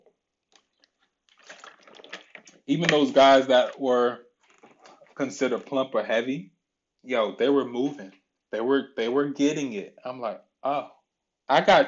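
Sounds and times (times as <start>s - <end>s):
water being poured for a drink: 0.6s - 5.8s
speech: 2.7s - 4.3s, 5.2s - 11.8s.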